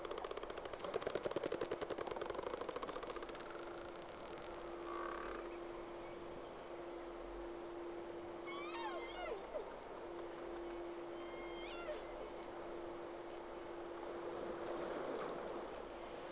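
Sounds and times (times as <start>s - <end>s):
low hum: 0.0s - 16.3s
two whales calling with bending warbling cries: 1.6s - 5.7s, 8.4s - 12.5s.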